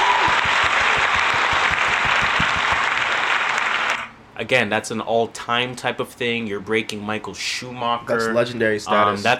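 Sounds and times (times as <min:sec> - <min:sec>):
crowd applauding a Grand Prix win: 0:00.0 - 0:04.1
speech: 0:04.4 - 0:09.3.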